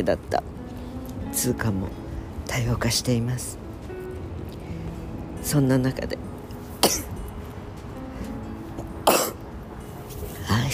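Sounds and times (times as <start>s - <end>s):
speech: 0.0s - 0.6s, 1.3s - 3.6s, 5.4s - 6.3s, 6.9s - 7.1s
cough and sneeze at the same time: 6.8s - 7.2s, 9.0s - 9.4s.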